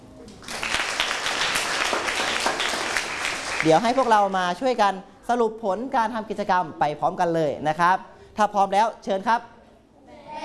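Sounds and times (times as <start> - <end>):
room full of people applauding: 0.4 - 4.2
speech: 3.6 - 9.6.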